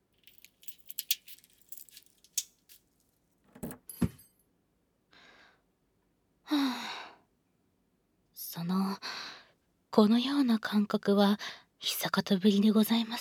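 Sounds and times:
keys jangling: 0:00.2 - 0:02.8, 0:03.6 - 0:04.3
speech: 0:10.0 - 0:13.1.

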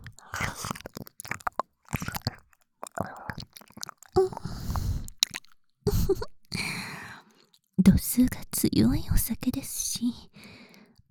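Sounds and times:
soft breathy noise: 0:00.0 - 0:05.2, 0:06.0 - 0:07.6, 0:10.4 - 0:11.0
wet mouth smacks and slurps of an ear being nibbled and licked: 0:00.0 - 0:05.7
speech: 0:08.2 - 0:10.6.

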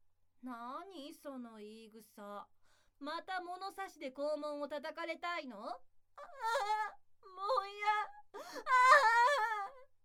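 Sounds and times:
speech: 0:00.4 - 0:09.6
woman wailing and crying: 0:07.6 - 0:09.8.

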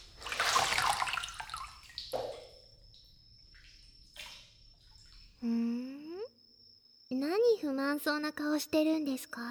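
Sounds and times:
water splashing and dripping in a bath while a body is washed: 0:00.0 - 0:05.4
speech: 0:07.6 - 0:09.4.

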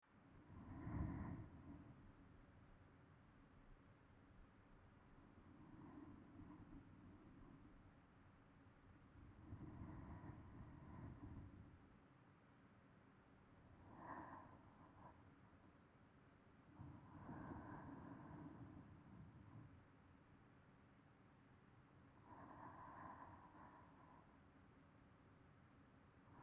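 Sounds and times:
sleep breathing: 0:00.5 - 0:02.5, 0:05.1 - 0:08.4, 0:09.2 - 0:11.8, 0:13.8 - 0:15.9, 0:16.7 - 0:20.4, 0:22.0 - 0:25.4.

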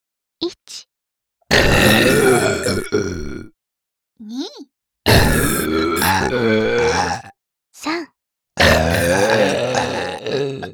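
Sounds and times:
speech: 0:00.4 - 0:00.9, 0:01.5 - 0:03.3, 0:04.2 - 0:07.2
group of people burping in rapid succession: 0:01.5 - 0:03.6, 0:05.1 - 0:07.4, 0:08.6 - 0:10.7.

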